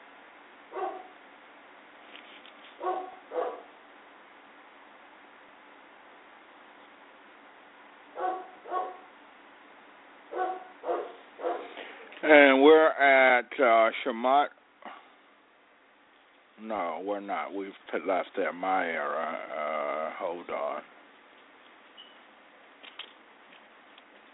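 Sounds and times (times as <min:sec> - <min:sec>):
steady hiss: 0:00.0 - 0:24.3
dog barking: 0:00.7 - 0:01.2, 0:02.8 - 0:03.7, 0:08.2 - 0:09.1, 0:10.3 - 0:11.8
speech: 0:12.2 - 0:14.6, 0:16.6 - 0:20.9.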